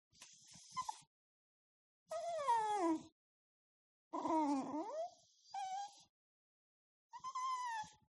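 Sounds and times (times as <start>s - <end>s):
dog whimpering really sadly: 2.1s - 3.1s, 4.2s - 6.1s, 7.2s - 8.1s.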